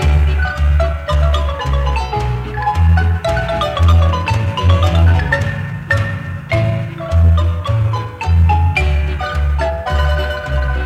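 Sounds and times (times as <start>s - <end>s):
Guatemalan melody played on marimba: 0.0s - 10.8s
booming low bass pattern: 0.0s - 10.8s.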